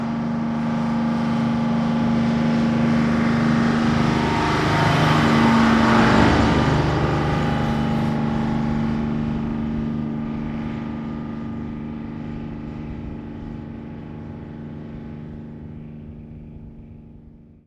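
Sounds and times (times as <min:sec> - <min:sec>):
diesel truck passing slowly outdoors: 0:00.2 - 0:17.5.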